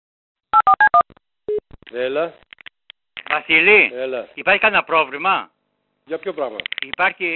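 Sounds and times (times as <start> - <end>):
telephone keypad dialing tones: 0.6 - 1.0
speech: 1.9 - 2.5, 3.3 - 7.3.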